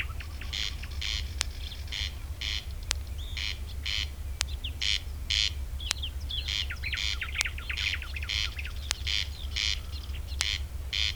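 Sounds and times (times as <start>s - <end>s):
corn crake grating crex-crex calling: 0.0s - 11.1s
other birds twittering: 0.0s - 11.1s
sharp clicks: 0.0s - 11.1s.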